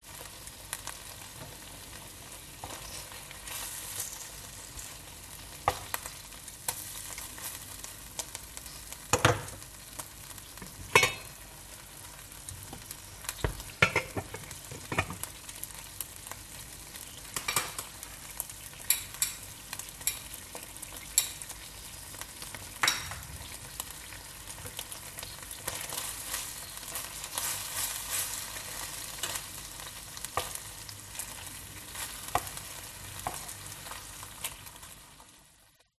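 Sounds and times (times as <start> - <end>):
frying pan sizzling: 0.0 - 35.9
pot lids clanking: 10.9 - 11.3, 13.8 - 15.2.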